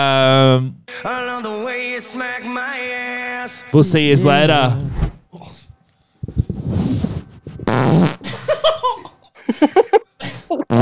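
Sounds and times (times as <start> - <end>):
speech: 0.0 - 5.0
loud raspy fart noises: 6.5 - 8.3
bursts of giggling and laughter: 8.2 - 10.7.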